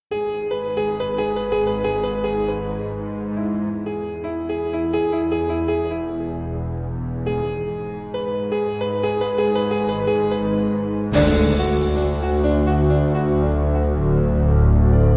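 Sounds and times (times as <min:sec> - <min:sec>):
fearful piano film theme: 0:00.1 - 0:15.1.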